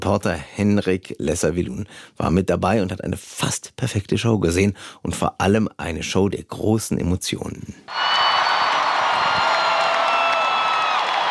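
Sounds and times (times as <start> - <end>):
speech: 0.0 - 8.3
huge concert crowd in Paris applauding and cheering in a standing ovation: 7.9 - 11.2.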